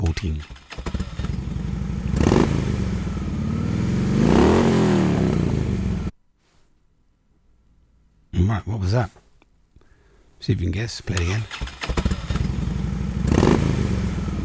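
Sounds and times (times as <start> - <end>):
speech: 0.2 - 0.6, 8.6 - 9.2, 10.4 - 12.1
Harley Davidson motorbike engine idling and revving: 0.4 - 6.1, 11.5 - 14.4.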